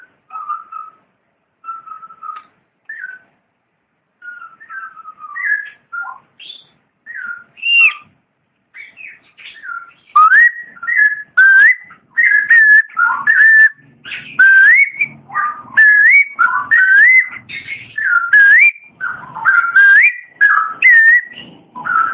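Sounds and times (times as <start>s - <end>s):
Long-tailed shrike singing whistled notes, rising slurs and warbles: 0.0s - 1.0s, 1.6s - 3.3s, 4.2s - 8.1s, 8.8s - 22.1s.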